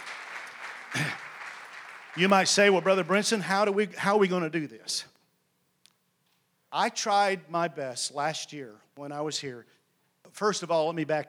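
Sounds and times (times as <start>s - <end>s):
church audience applauding at a morning service: 0.0s - 3.5s
speech: 2.2s - 5.1s, 6.7s - 11.2s.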